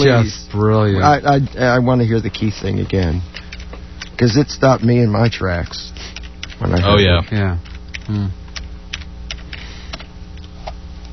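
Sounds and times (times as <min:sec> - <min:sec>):
speech: 0:00.0 - 0:03.4, 0:04.2 - 0:08.4
typing on a computer keyboard with one hand: 0:03.4 - 0:06.6, 0:07.6 - 0:10.1.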